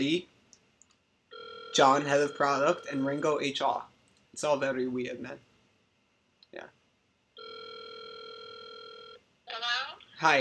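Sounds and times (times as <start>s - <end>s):
speech: 0.0s - 0.3s, 1.7s - 5.5s, 6.5s - 6.8s, 9.5s - 10.3s
electronic telephone ring: 1.3s - 3.2s, 7.4s - 9.2s.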